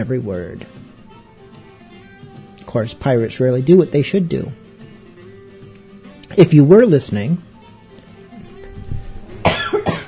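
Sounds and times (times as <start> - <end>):
speech: 0.0 - 0.8, 2.7 - 4.6, 6.3 - 7.5
harsh loud coughs: 9.4 - 10.0.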